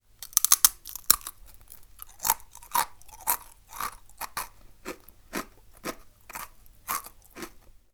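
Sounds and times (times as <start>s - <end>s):
biting into crispbread: 0.2s - 7.7s.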